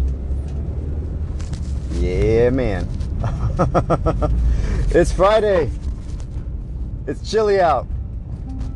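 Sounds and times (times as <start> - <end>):
supercharged four-cylinder car engine running: 0.0 - 8.7
speech: 2.0 - 3.0, 3.6 - 5.8, 7.1 - 7.9
laughter: 3.2 - 4.4.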